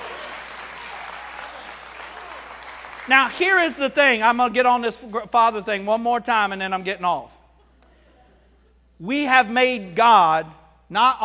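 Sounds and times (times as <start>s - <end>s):
audience clapping during a church sermon: 0.0s - 4.0s
speech: 3.1s - 7.4s, 9.0s - 11.2s.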